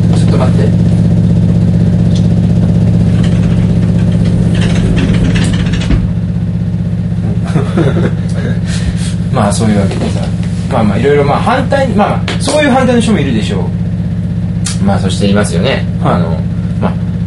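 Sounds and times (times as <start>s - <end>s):
washing machine running at home with a loud steady low hum: 0.0s - 17.2s
rustles and clatters: 3.0s - 6.2s
laughter: 7.2s - 9.0s
speech: 9.6s - 13.8s, 14.8s - 17.0s.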